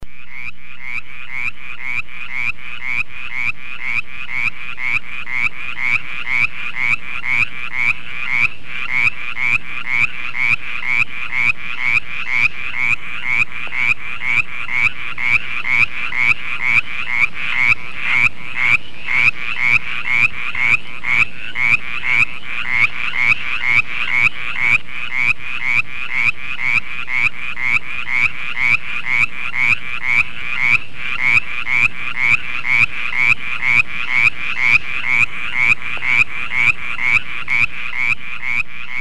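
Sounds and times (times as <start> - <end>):
mountain chorus frog calling: 0.1 - 39.0.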